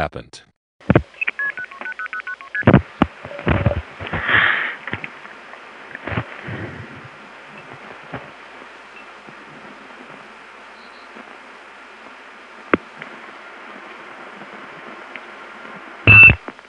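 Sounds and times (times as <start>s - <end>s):
speech: 0.0s - 1.0s
crackly telephone line noise: 0.9s - 16.6s
touch-tone telephone number being dialed: 16.1s - 16.4s.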